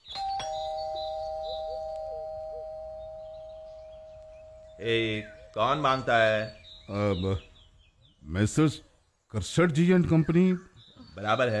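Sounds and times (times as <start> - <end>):
doorbell ringing with an electronic chime: 0.1 - 5.2
speech: 4.8 - 7.5, 8.3 - 11.5.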